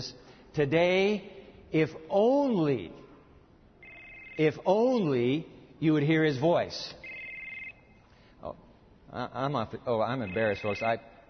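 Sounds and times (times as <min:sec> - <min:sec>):
speech: 0:00.0 - 0:03.0, 0:04.4 - 0:07.0, 0:08.4 - 0:11.1
mobile phone ringtone during a sermon: 0:03.8 - 0:04.6, 0:07.0 - 0:08.0, 0:10.2 - 0:10.9.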